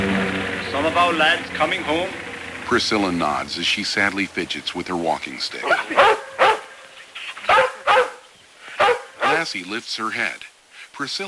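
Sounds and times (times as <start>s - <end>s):
speech: 0.8s - 6.2s, 9.4s - 11.2s
collie dog barking: 5.6s - 6.8s, 7.4s - 9.5s.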